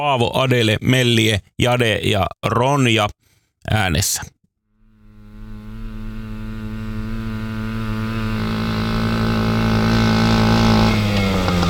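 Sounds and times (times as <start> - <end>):
speech: 0.0 - 4.4
small moped engine running and revving: 4.8 - 11.6.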